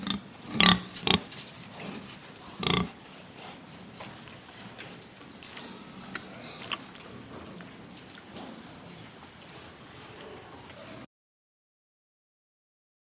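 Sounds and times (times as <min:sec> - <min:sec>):
pig grunting: 0:00.0 - 0:03.6, 0:05.4 - 0:11.1.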